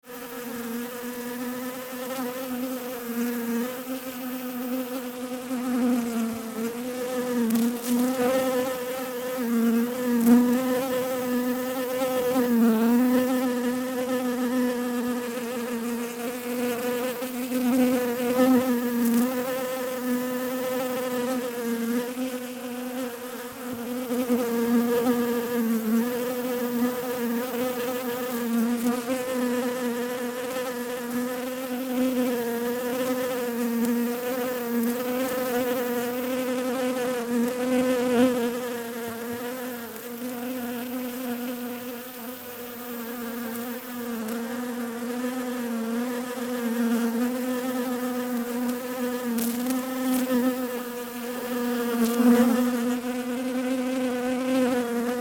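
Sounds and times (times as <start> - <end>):
bees buzzing: 0.1 - 55.1.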